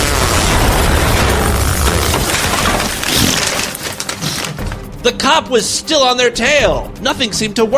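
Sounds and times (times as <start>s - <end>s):
loud sustained explosion with deep rumble and debris-like hiss: 0.0s - 3.8s
scattered pops after explosion: 0.0s - 4.8s
speech: 5.0s - 7.7s.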